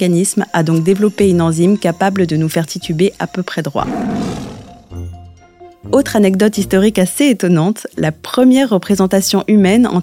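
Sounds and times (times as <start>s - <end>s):
speech: 0.0s - 4.5s, 5.8s - 10.0s
tiger roaring: 3.8s - 5.0s
tiger's deep rumbling growl: 3.8s - 5.0s.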